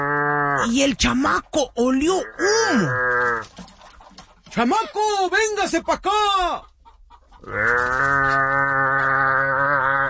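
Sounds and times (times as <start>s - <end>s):
speech: 0.6s - 3.7s, 4.5s - 6.7s, 7.4s - 8.6s
cow bellowing in a long moo: 7.4s - 10.0s.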